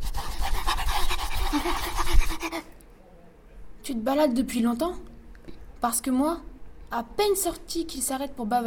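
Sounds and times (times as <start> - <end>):
dog panting: 0.2 - 2.7
speech: 3.9 - 5.1, 5.8 - 8.6.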